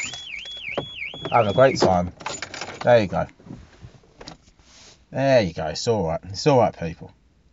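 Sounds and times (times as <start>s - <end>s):
car alarm siren: 0.0s - 2.0s
thumps: 0.0s - 4.5s
speech: 1.3s - 2.2s, 2.8s - 3.4s, 5.1s - 7.2s.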